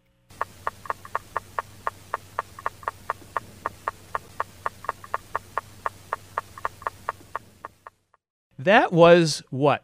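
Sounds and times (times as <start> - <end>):
steady low hum: 0.0 - 8.1
female African clawed frog Xenopus laevis rapping call: 0.3 - 8.0
speech: 8.6 - 9.8.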